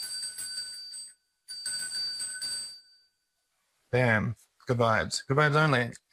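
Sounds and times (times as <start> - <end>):
small cleansing hand bell jingling: 0.0 - 3.2
speech: 3.9 - 6.0.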